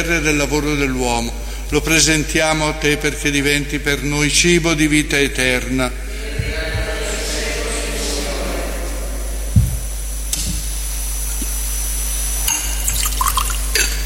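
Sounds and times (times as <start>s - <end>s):
speech: 0.0s - 6.5s
steady hiss: 0.0s - 14.0s
faint clinks and taps of vessels: 12.5s - 14.0s
small amount of water trickling into wine in a chalice during Mass: 12.5s - 14.0s.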